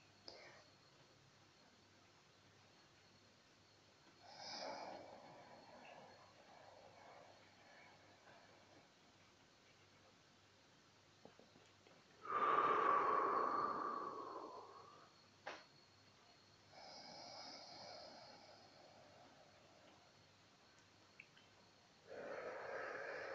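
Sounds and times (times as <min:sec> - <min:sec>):
person breathing in deeply during guided meditation: 0:04.2 - 0:08.8, 0:12.2 - 0:15.3, 0:16.7 - 0:19.8, 0:22.0 - 0:23.3.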